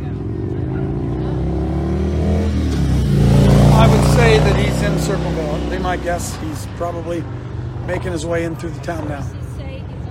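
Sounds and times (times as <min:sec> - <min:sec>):
police car engine rumbling slowly past: 0:00.0 - 0:07.0
speech: 0:04.3 - 0:09.4.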